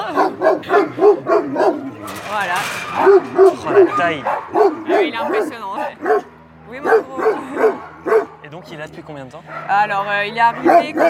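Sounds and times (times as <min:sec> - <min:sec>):
Anatolian shepherd dog barking at an animal shelter: 0:00.0 - 0:02.2, 0:03.0 - 0:08.5, 0:09.4 - 0:09.9, 0:10.5 - 0:11.0
speech: 0:04.0 - 0:07.0, 0:08.6 - 0:11.0.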